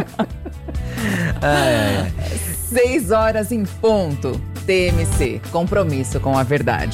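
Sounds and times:
speech: 0.0 - 0.4, 1.4 - 6.9
laughter: 0.0 - 2.9
person yawning: 1.0 - 2.4.

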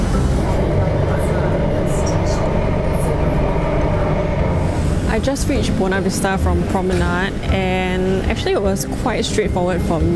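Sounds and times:
high-pitched squeals: 0.0 - 6.8
hissing: 0.0 - 7.1
metro train rumbling as it pulls into a station: 0.0 - 10.1
speech: 5.2 - 10.1.

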